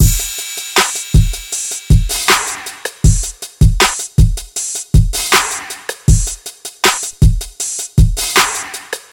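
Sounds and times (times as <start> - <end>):
kick drum tuned to the D sharp note: 0.0 - 0.4, 1.1 - 5.5, 6.1 - 8.5
79 bpm modern drum groove in D sharp: 0.0 - 9.1.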